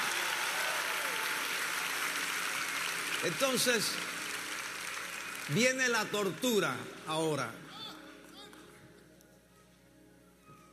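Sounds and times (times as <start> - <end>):
audience clapping: 0.0 - 7.5
speech: 3.2 - 4.2, 5.5 - 7.6.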